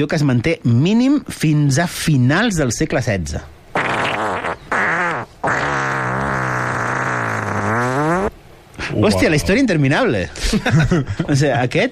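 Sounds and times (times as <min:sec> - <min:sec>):
speech: 0:00.0 - 0:03.9, 0:09.0 - 0:11.8
long drawn-out fart with a wavering buzzy pitch: 0:03.7 - 0:08.3.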